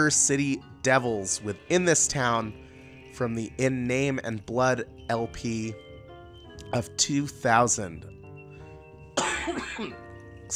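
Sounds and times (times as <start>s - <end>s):
speech: 0.0s - 5.8s, 6.7s - 8.2s, 9.5s - 10.5s
loud cough with throaty rasp: 9.2s - 10.0s.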